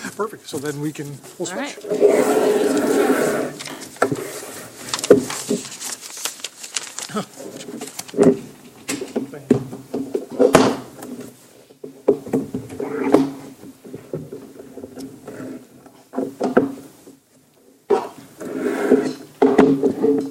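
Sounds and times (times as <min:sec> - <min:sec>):
chairs scraping across floor: 0:00.0 - 0:05.8, 0:10.0 - 0:16.9, 0:17.9 - 0:20.3
speech: 0:00.2 - 0:03.7
chairs being shifted around: 0:01.2 - 0:05.8, 0:07.1 - 0:17.2, 0:17.9 - 0:20.3.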